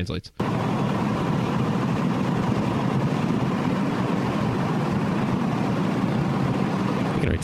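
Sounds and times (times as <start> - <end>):
speech: 0.0 - 0.7, 7.2 - 7.4
heavy engine rumbling steadily and loudly: 0.4 - 7.3.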